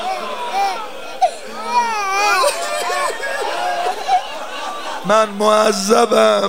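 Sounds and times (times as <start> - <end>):
small frightened child in an audience crying and whimpering: 0.0 - 3.5
laughter: 0.0 - 6.4
murmuring voices of a noisy crowd: 0.0 - 6.4
speech: 5.1 - 6.4.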